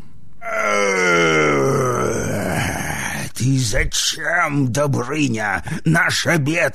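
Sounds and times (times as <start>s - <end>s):
person voicing a loud drawn-out serpent-dragon roar: 0.4s - 3.2s
speech: 3.7s - 6.7s.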